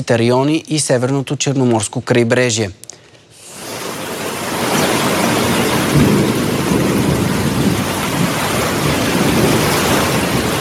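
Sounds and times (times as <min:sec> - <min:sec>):
speech: 0:00.0 - 0:02.9
heavy rain pouring: 0:03.4 - 0:10.5
low thunder rumbling: 0:03.6 - 0:10.5.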